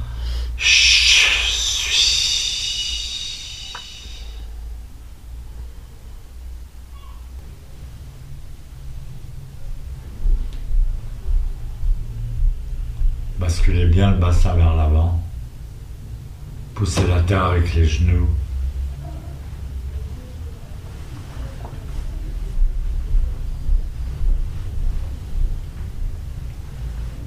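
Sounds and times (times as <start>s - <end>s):
loud forceful breath: 0.0s - 4.5s
quiet low rumble: 0.0s - 16.8s, 18.4s - 27.2s
speech: 14.0s - 15.2s, 16.8s - 18.4s.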